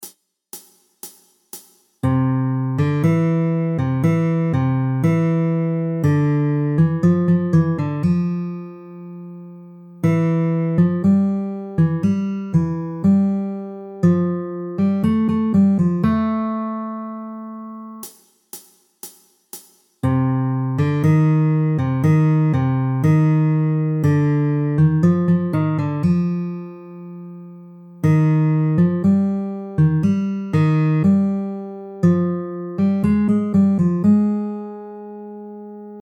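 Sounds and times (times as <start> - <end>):
guitar playing a scale: 2.0 - 18.0, 20.0 - 36.0.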